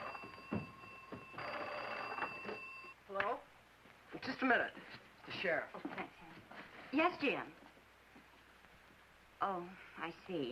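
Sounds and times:
old-style telephone bell ringing: 0:00.0 - 0:03.0
speech: 0:04.2 - 0:06.2, 0:06.9 - 0:07.6, 0:09.4 - 0:10.5.

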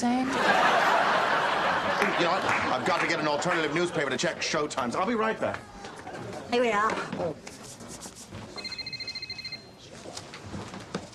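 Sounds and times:
noise: 0:00.0 - 0:11.1
laughter: 0:00.3 - 0:06.5
speech: 0:02.2 - 0:07.6
telephone ringing with an electronic trill: 0:08.6 - 0:09.8.

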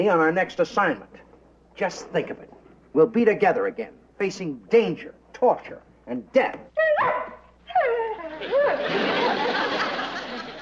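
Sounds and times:
speech: 0:00.0 - 0:01.2, 0:01.8 - 0:09.8
dog barking and yelping: 0:07.0 - 0:07.4
laughter: 0:08.3 - 0:10.6.

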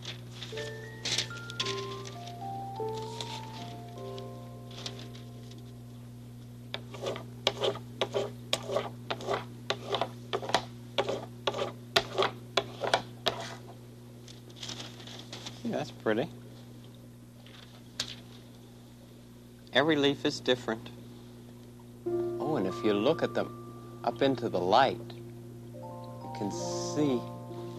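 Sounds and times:
low steady hum: 0:00.0 - 0:27.7
soft musical tune: 0:00.5 - 0:06.2, 0:22.0 - 0:27.7
scratchy back-and-forth rubbing strokes: 0:06.8 - 0:13.6
speech: 0:16.0 - 0:16.4, 0:19.8 - 0:21.0, 0:22.8 - 0:25.2, 0:26.4 - 0:27.3.

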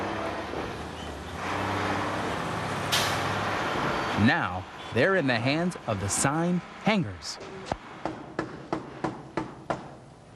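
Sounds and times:
flatbed trucks driving through city streets: 0:00.0 - 0:08.0
busy street traffic: 0:00.0 - 0:10.3
speech: 0:04.2 - 0:07.8.

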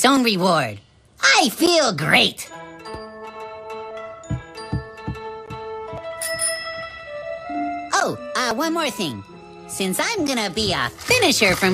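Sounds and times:
speech: 0:00.0 - 0:03.0, 0:08.0 - 0:11.7
bicycle bell ringing: 0:06.2 - 0:07.1.

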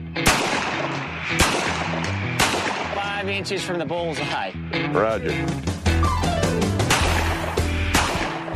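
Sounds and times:
six-gun revolver gunshots at a cowboy pistol shoot-off contest: 0:00.2 - 0:03.2, 0:06.9 - 0:08.5
speech: 0:03.2 - 0:06.8.

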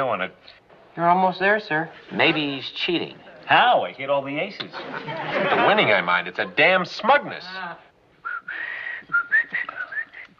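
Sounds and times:
speech: 0:00.0 - 0:07.9
laughter: 0:04.6 - 0:07.6
person whistling a short wandering tune: 0:08.2 - 0:10.3.

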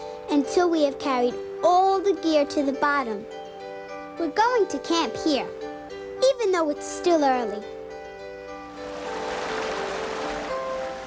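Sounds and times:
speech: 0:00.3 - 0:03.4, 0:04.2 - 0:05.6, 0:06.2 - 0:07.8
waterfall rushing: 0:08.7 - 0:11.0.

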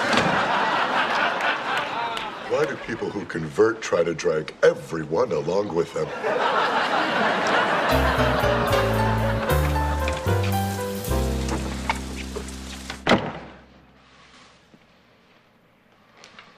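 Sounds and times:
laughter: 0:00.0 - 0:03.5, 0:06.0 - 0:10.1
speech: 0:02.6 - 0:09.0
rain falling: 0:07.9 - 0:13.1
sustained stepping musical tones: 0:07.9 - 0:14.0
sharp knock: 0:13.0 - 0:13.6.

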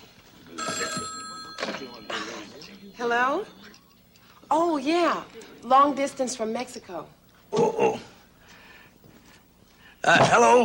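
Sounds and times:
telephone ringing with a high electronic tone: 0:00.5 - 0:04.1
speech: 0:03.0 - 0:03.6, 0:04.5 - 0:08.1, 0:10.0 - 0:10.6.

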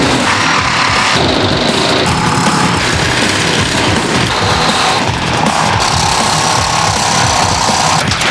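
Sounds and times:
power tool cutting off rear vehicle body panels: 0:00.1 - 0:08.2.

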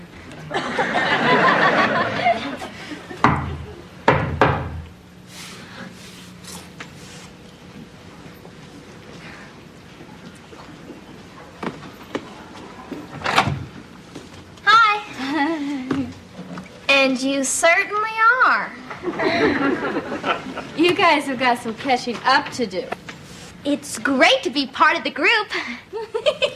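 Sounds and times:
quiet room noise: 0:00.0 - 0:25.5
laughter: 0:00.4 - 0:03.9, 0:15.2 - 0:16.2, 0:18.9 - 0:20.9, 0:25.6 - 0:26.5
patterned secret knock on a door: 0:03.2 - 0:04.8
speech: 0:17.2 - 0:23.0, 0:23.6 - 0:25.9.

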